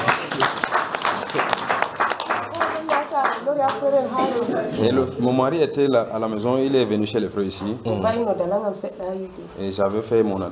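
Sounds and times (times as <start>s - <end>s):
applause at a church service: 0.0s - 3.8s
speech: 3.6s - 10.5s.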